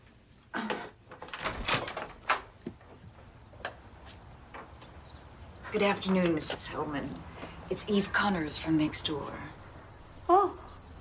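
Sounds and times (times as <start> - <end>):
door being opened: 0.6 - 3.8
doorknob clicks and rattles: 1.1 - 2.6
speech: 5.7 - 9.6.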